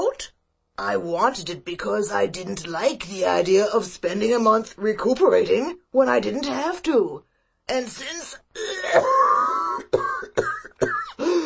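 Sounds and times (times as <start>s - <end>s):
speech: 0.2s - 10.5s
voice acting out a fit of rasping coughing: 8.6s - 11.2s.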